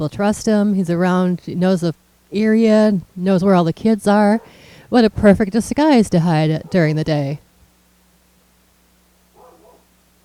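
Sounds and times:
speech: 0.0 - 7.4
low hum: 0.0 - 10.2
dog bark outside: 4.4 - 4.6, 6.6 - 6.9, 9.3 - 10.2.

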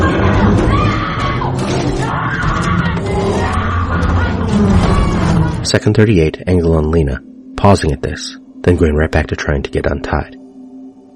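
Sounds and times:
woman screaming in panic while attacked by a bear: 0.0 - 5.6
bear's deep growls and thrashing: 0.0 - 6.0
speech: 5.7 - 10.4.

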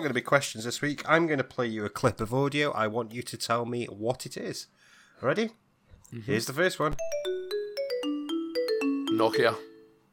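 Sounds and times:
speech: 0.0 - 7.4, 9.2 - 9.7
classic Nokia 3310 monophonic ringtone: 7.0 - 10.1.

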